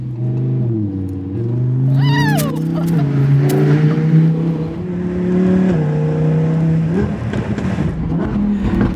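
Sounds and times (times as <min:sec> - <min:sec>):
gold sports car engine revving: 0:00.0 - 0:08.9.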